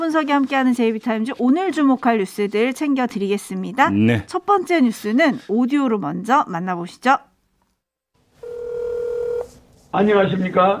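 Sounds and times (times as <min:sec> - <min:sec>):
speech: 0:00.0 - 0:07.3, 0:09.9 - 0:10.7
steady electronic telephone ring tone: 0:08.4 - 0:09.5.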